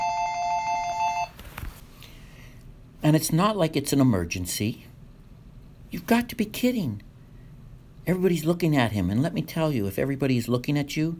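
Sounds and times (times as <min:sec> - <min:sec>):
mobile phone ringtone with bright electronic tones: 0:00.0 - 0:01.4
soft rustles: 0:01.3 - 0:02.0
speech: 0:03.0 - 0:04.9, 0:06.0 - 0:07.1, 0:08.0 - 0:11.1.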